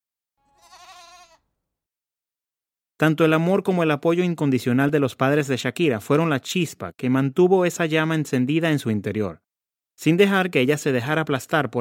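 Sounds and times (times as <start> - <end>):
goat bleating: 0.5 - 1.5
speech: 3.0 - 9.4, 10.0 - 11.7.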